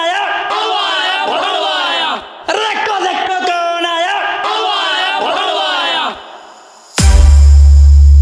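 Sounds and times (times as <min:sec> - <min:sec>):
large audience chanting in unison: 0:00.2 - 0:06.8
harsh loud noise burst: 0:06.1 - 0:08.1.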